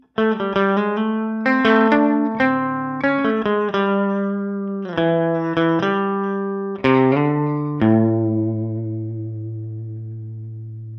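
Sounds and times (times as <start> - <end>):
clean VOX AC30 guitar amplifier tone: 0.0 - 10.9.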